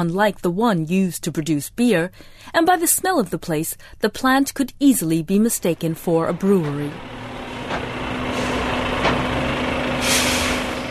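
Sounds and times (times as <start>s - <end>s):
speech: 0.0s - 7.2s
heavy grain trucks idling at the gate of a bioethanol plant: 5.6s - 10.8s
air brakes of grain trucks releasing: 7.6s - 10.8s.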